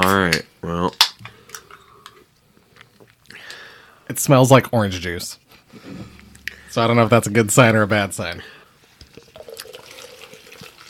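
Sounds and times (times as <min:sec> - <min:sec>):
speech: 0:04.2 - 0:06.1, 0:06.8 - 0:08.6
sour ale with cranberry, orange, star fruit and spices pouring into a glass: 0:09.1 - 0:10.8.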